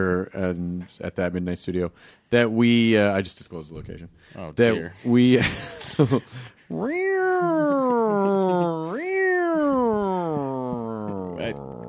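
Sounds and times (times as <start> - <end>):
speech: 0.0 - 7.8
laughter: 5.2 - 11.8
human voice imitating a cat meowing like a siren: 6.7 - 11.8.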